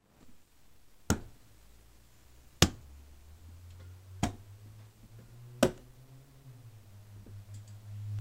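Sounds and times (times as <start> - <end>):
thumps: 1.1 - 1.4, 3.7 - 5.9.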